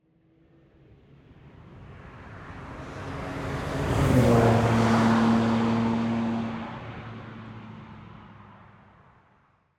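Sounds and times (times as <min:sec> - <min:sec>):
sports car passing by: 0:02.4 - 0:08.2.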